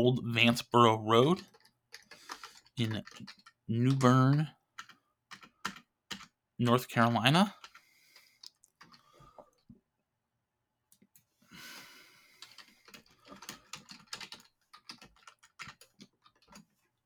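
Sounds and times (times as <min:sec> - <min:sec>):
speech: 0:00.0 - 0:01.6, 0:02.8 - 0:04.6, 0:06.6 - 0:07.6
typing on a computer keyboard: 0:01.2 - 0:06.4, 0:07.5 - 0:09.1, 0:12.4 - 0:16.7.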